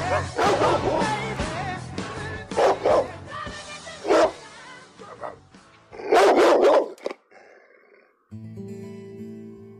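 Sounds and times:
dog barking: 0:00.1 - 0:01.2, 0:02.5 - 0:03.2, 0:04.0 - 0:04.4, 0:05.0 - 0:07.1.

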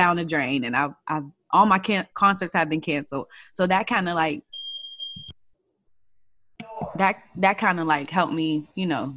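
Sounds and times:
speech: 0:00.0 - 0:04.5, 0:06.9 - 0:09.1
high-pitched electronic alarm beep: 0:04.4 - 0:05.4.

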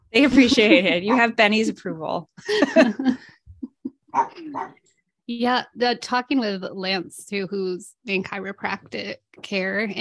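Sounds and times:
speech: 0:00.1 - 0:03.4, 0:04.2 - 0:09.9
laughter: 0:02.4 - 0:04.5
dogs barking: 0:04.1 - 0:04.8.

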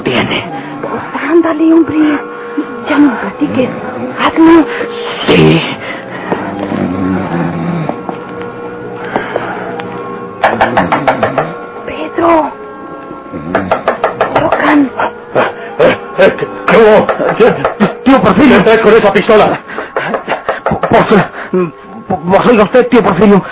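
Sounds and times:
voices: 0:00.0 - 0:09.7, 0:10.4 - 0:23.4
low tonal sound: 0:00.0 - 0:23.4
speech: 0:00.2 - 0:06.1, 0:16.8 - 0:19.6, 0:20.9 - 0:23.4
loud knocking on a door: 0:10.4 - 0:11.6, 0:13.5 - 0:14.6
laughter: 0:14.9 - 0:18.8, 0:19.4 - 0:21.8.

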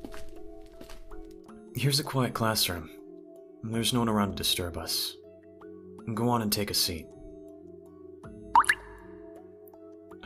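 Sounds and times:
speech: 0:01.8 - 0:03.0, 0:03.6 - 0:05.2, 0:06.1 - 0:07.2
water droplet plops: 0:08.5 - 0:09.2.

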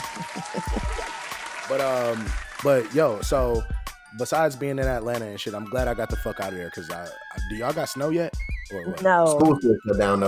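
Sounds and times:
crowd clapping: 0:00.0 - 0:03.3
speech: 0:00.2 - 0:01.0, 0:01.7 - 0:10.2.

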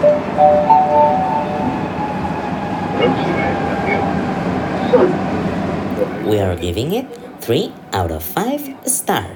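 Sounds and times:
Madrid subway train rumble heard from inside a moving car: 0:00.0 - 0:09.3
voices: 0:02.7 - 0:09.3
speech: 0:06.3 - 0:09.3.

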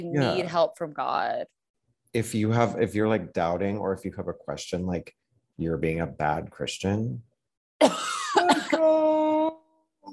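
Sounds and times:
steady voiced hum: 0:00.0 - 0:00.6, 0:02.2 - 0:07.2
speech: 0:00.0 - 0:09.2
raspy throat-clearing cough from smoothie stuck in the throat: 0:07.8 - 0:09.3.

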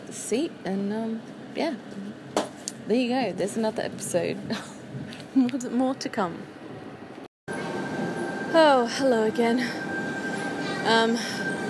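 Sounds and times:
suburban train humming at a station platform: 0:00.0 - 0:11.6
speech: 0:00.3 - 0:02.3, 0:02.9 - 0:04.8, 0:05.4 - 0:06.6, 0:08.6 - 0:09.8, 0:10.8 - 0:11.4
bright tonal squeal: 0:07.5 - 0:11.6.

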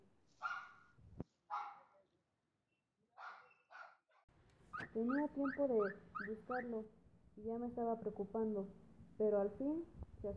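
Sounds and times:
dog barking: 0:00.4 - 0:02.0, 0:03.2 - 0:06.7
speech: 0:04.9 - 0:10.3.

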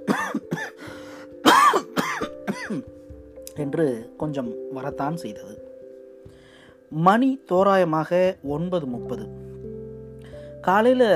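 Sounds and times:
person coughing hoarsely: 0:00.0 - 0:00.8, 0:01.4 - 0:02.9
speech: 0:03.6 - 0:05.7, 0:06.9 - 0:09.4, 0:10.6 - 0:11.1.

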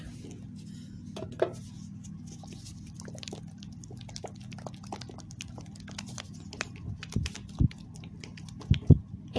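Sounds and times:
soft low hum: 0:00.0 - 0:09.3
runny strawberry-scented hand cream squishing between fingers: 0:02.4 - 0:08.9.

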